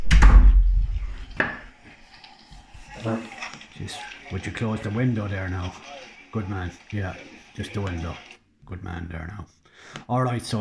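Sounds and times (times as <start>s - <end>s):
door closing with a heavy low thud: 0.0s - 1.2s
faint murmur of a voice: 2.5s - 8.4s
speech: 3.0s - 10.5s.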